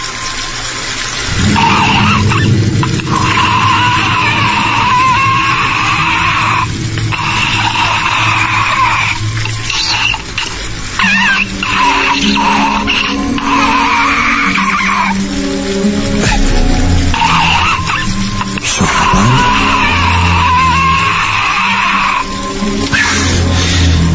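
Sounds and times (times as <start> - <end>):
old water pump rumbling with a grinding whining edge: 0.0 - 24.1.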